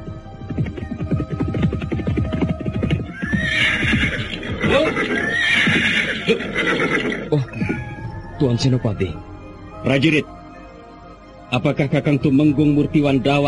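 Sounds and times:
hooves clip-clopping as a rider on horseback approaches a guarded gate at night: 0.3s - 8.0s
speech: 0.6s - 1.5s, 4.6s - 7.8s, 8.4s - 10.4s, 11.5s - 13.4s
horse neighing: 3.1s - 8.2s.

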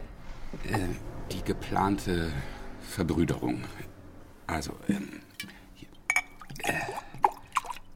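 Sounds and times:
speech: 0.6s - 3.9s, 4.5s - 5.5s
glasses clinking: 4.9s - 7.0s.

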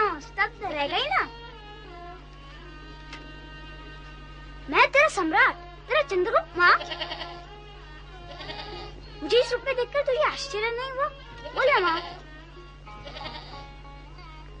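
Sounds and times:
low hum: 0.0s - 14.5s
speech: 0.2s - 1.3s, 5.2s - 7.5s, 9.2s - 12.2s
young kids of spotted goats bleating: 6.5s - 9.6s, 11.1s - 14.1s.

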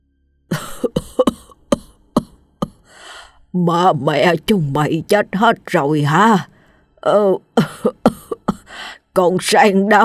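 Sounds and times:
elderly man in a house giving harsh hacking coughs: 0.5s - 2.9s, 7.6s - 8.7s
speech: 3.6s - 8.2s, 9.2s - 10.0s.

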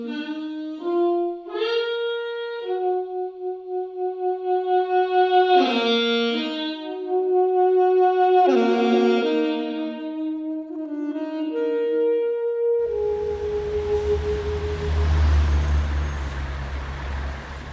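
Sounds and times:
sustained tonal saxophone-like notes: 0.0s - 17.7s
loud street traffic with deep low engine drone: 12.8s - 17.7s.

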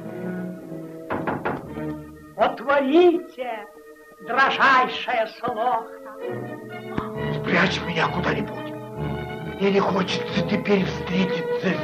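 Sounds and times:
knocking on a door: 1.1s - 1.9s
speech: 2.4s - 6.6s, 7.6s - 8.6s, 9.6s - 11.8s.

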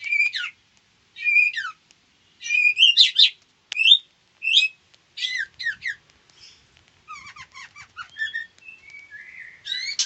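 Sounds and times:
female white-rumped shama whistling and chattering: 0.0s - 0.6s, 1.2s - 1.8s, 2.4s - 10.0s.

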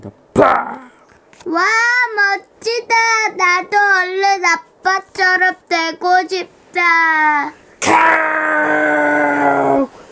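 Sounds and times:
speech: 0.0s - 9.9s
parent dinosaur howl in a children's audio story: 7.8s - 9.9s.

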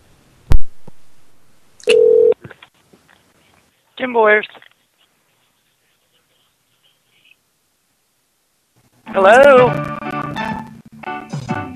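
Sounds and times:
steady telephone beep tone: 1.8s - 2.4s
speech: 4.0s - 4.6s, 9.2s - 9.9s.

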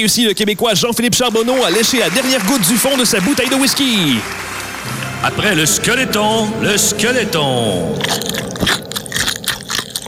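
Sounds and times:
speech: 0.0s - 8.8s
person eating chicken wings down to the bones: 8.0s - 10.0s.

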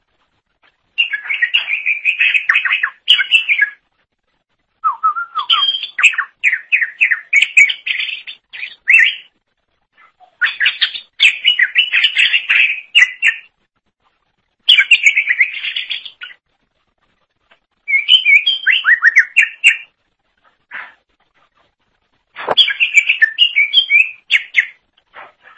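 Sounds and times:
leafbird song with chattering and whistled notes: 0.9s - 3.9s, 4.8s - 9.3s, 10.0s - 13.5s, 14.6s - 16.4s, 17.8s - 20.0s, 22.4s - 24.8s.

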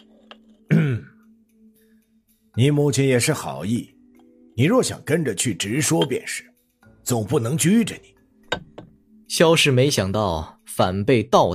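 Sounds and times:
man coughing to clear his throat: 0.7s - 1.2s
speech: 2.6s - 4.0s, 4.6s - 8.7s, 9.3s - 11.5s.

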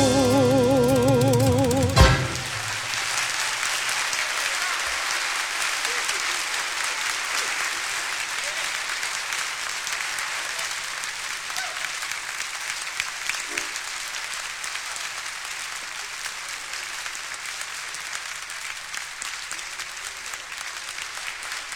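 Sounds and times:
tango song performed live by a contemporary tango group: 0.0s - 3.2s
audience applause after a live tango song: 0.0s - 21.7s.

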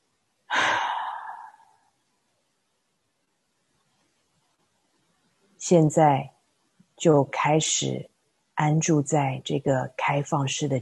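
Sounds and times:
person exhaling deeply after holding breath during a guided meditation breathing exercise: 0.5s - 1.7s
speech: 5.6s - 6.3s, 7.0s - 10.8s.

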